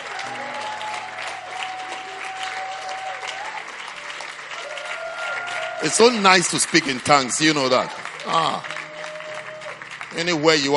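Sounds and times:
audience clapping for people going back to their seats: 0.0s - 10.7s
speech: 5.8s - 8.7s, 10.2s - 10.7s.

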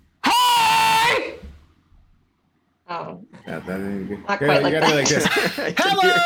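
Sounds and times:
person screaming: 0.2s - 1.4s
speech: 3.0s - 6.2s
laughter: 3.5s - 6.2s.

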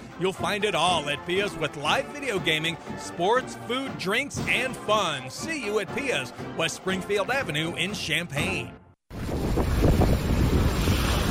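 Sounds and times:
speech: 0.2s - 8.8s
howling winter storm wind roaring: 9.1s - 11.2s.

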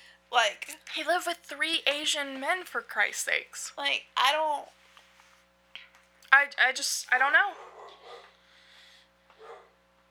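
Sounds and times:
steady low hum: 0.0s - 10.0s
speech: 0.3s - 4.8s, 6.3s - 7.7s
dog barking: 7.5s - 8.4s, 9.4s - 9.8s.

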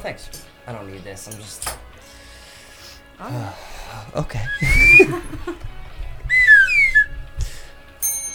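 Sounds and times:
speech: 0.0s - 2.2s, 3.2s - 5.7s
penny whistle notes: 4.4s - 5.2s, 6.3s - 7.2s
laughter: 4.5s - 5.7s.

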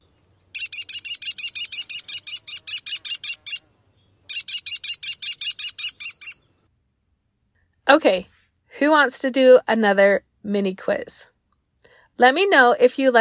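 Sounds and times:
American kestrel giving sharp high-pitched klee calls: 0.4s - 6.5s
speech: 7.9s - 11.3s, 12.2s - 13.1s.

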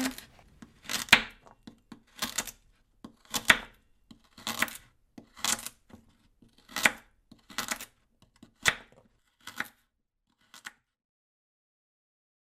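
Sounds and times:
knife chopping potatoes and carrots on a board: 0.8s - 9.8s.

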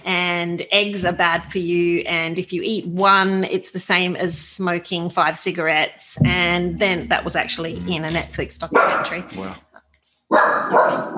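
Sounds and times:
speech: 0.6s - 9.7s, 10.3s - 11.1s
puppy barking yappy: 10.3s - 11.1s.

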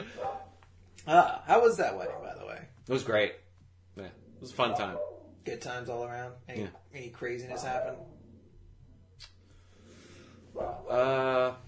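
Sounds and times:
faint hum: 0.0s - 11.6s
female dog barking with a whining edge: 0.1s - 0.6s, 1.9s - 2.5s, 4.6s - 5.3s, 7.5s - 8.1s, 10.5s - 10.9s
speech: 1.0s - 3.4s, 4.0s - 8.2s, 10.6s - 11.6s.

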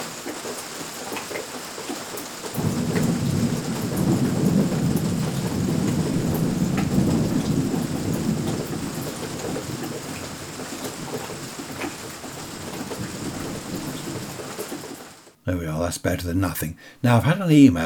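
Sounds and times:
steady rain: 0.0s - 15.4s
deep rolling rumble of thunder: 2.6s - 14.9s
speech: 15.5s - 17.8s.

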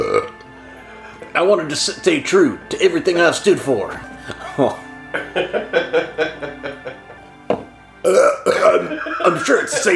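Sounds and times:
person burping: 0.0s - 0.4s, 8.0s - 9.3s
person gulping: 0.0s - 0.4s, 8.0s - 8.8s
speech: 1.3s - 6.4s, 8.1s - 9.9s
laughter: 4.4s - 7.2s, 8.6s - 9.9s.

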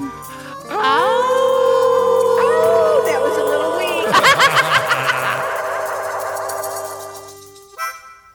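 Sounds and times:
people yelping like dogs: 0.6s - 7.2s
several people howling like dogs at the moon: 0.6s - 7.4s
people laughing: 0.7s - 7.2s.

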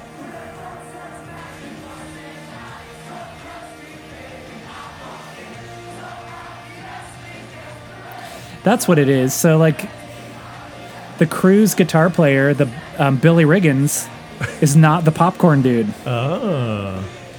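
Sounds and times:
large crowd singing along at concert: 0.0s - 17.3s
laughter: 8.1s - 9.9s, 10.9s - 17.3s
speech: 8.6s - 10.0s, 11.2s - 17.2s.

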